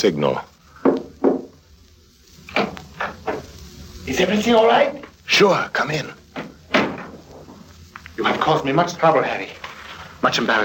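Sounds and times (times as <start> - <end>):
speech: 0.0 - 0.5, 4.1 - 6.2, 8.2 - 9.6, 10.2 - 10.6
soft hesitant knocking on a wooden door: 0.8 - 1.5.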